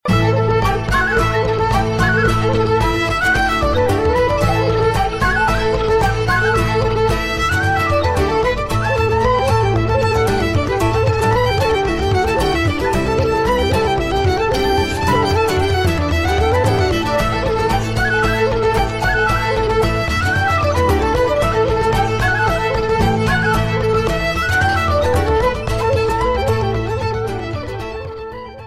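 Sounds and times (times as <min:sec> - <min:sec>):
Irish tavern music: 0:00.0 - 0:28.6.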